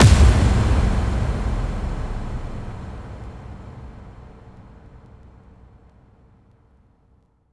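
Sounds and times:
hits: 0:00.0 - 0:04.3
explosion: 0:00.0 - 0:05.0.

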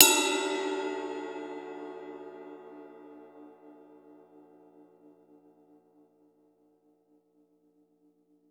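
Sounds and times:
house music cymbal hit: 0:00.0 - 0:02.4.

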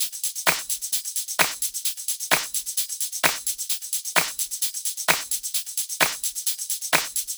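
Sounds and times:
drum kit beat: 0:00.5 - 0:00.8, 0:01.4 - 0:03.6, 0:04.2 - 0:06.4, 0:07.0 - 0:07.3.

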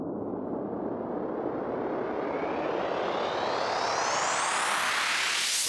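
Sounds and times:
sweep sound effect: 0:00.1 - 0:05.6.

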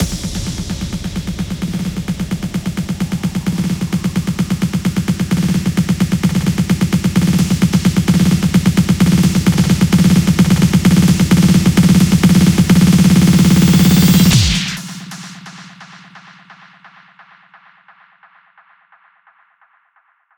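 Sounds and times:
intro drum fill: 0:00.0 - 0:16.0.

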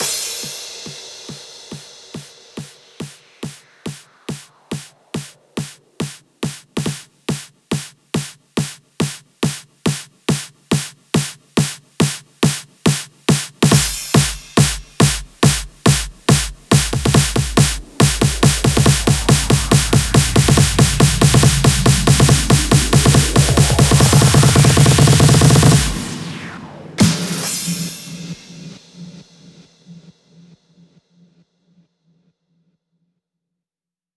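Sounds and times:
140 BPM hands up trance drum fills: 0:00.0 - 0:30.4.

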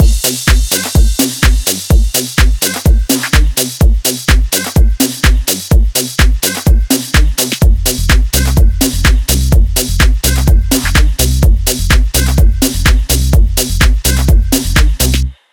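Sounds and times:
126 BPM tech house music: 0:00.0 - 0:15.4.

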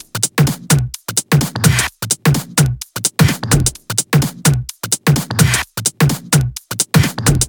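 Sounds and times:
128 BPM big floor dance drum groove: 0:00.0 - 0:07.4.

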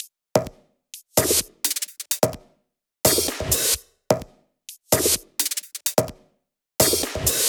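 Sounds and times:
drum kit beat: 0:00.0 - 0:02.5, 0:03.1 - 0:07.4.

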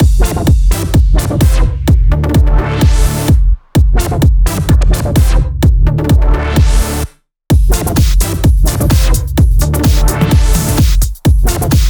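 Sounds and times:
128 BPM music mix: 0:00.0 - 0:11.8.

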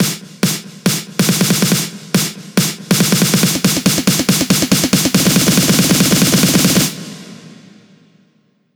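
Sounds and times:
snare drum loop: 0:00.0 - 0:07.1.

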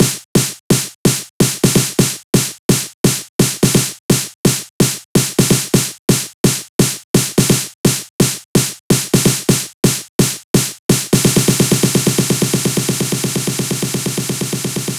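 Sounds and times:
128 BPM electro house drum fills: 0:00.0 - 0:14.9.

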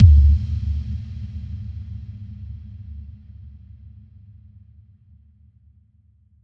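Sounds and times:
boom effect: 0:00.0 - 0:00.8.

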